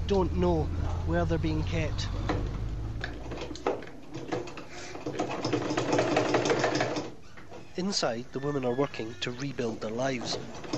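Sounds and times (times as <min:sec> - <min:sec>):
speech: 0:00.1 - 0:02.5, 0:07.8 - 0:10.6
sewing machine running: 0:03.2 - 0:07.2.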